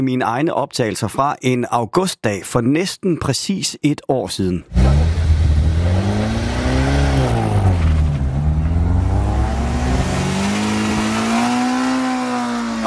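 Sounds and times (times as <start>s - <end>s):
speech: 0.0s - 5.2s
outdoor noise: 4.7s - 12.8s
vintage car engines revving and accelerating uphill: 4.7s - 12.8s.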